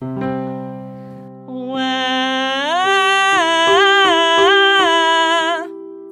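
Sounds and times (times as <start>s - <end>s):
singer demonstrating a nasal whine vocal exercise: 1.5s - 5.7s.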